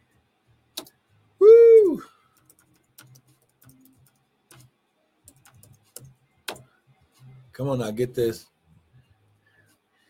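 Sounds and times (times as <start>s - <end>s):
typing on a keyboard: 2.4s - 4.7s, 5.3s - 6.6s
speech: 7.6s - 8.5s.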